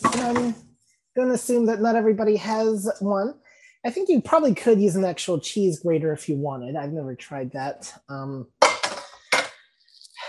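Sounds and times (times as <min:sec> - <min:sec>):
speech: 0:00.2 - 0:00.6, 0:01.2 - 0:08.6
metal pan clanking as it is moved aside in a home kitchen: 0:08.6 - 0:09.6.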